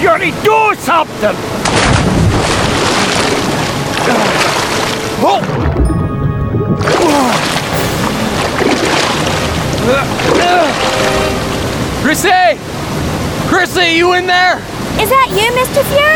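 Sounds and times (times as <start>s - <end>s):
speech: 0.0s - 2.5s, 5.2s - 5.7s, 6.8s - 7.5s, 9.8s - 11.4s, 12.0s - 12.7s, 13.5s - 16.1s
rushing and splashing creek water: 0.0s - 6.0s, 6.6s - 16.1s
wagon crashing and churning through a creek: 1.6s - 6.0s, 6.8s - 11.7s.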